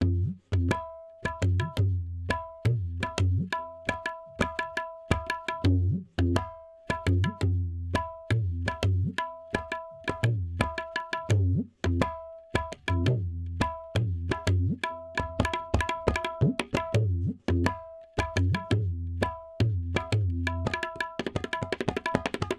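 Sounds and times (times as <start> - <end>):
tabla: 0.0 - 22.5.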